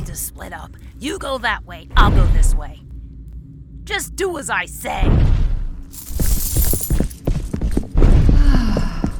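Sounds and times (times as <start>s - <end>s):
speech: 0.4s - 2.9s, 3.9s - 5.4s
frantic running footsteps on a hard floor in a huge hall: 6.0s - 9.1s.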